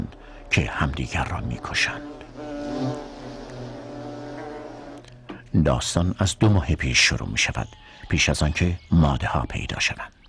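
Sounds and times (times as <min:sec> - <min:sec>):
bees buzzing in a colony: 0:00.0 - 0:05.4
speech: 0:00.5 - 0:02.2, 0:05.5 - 0:10.2.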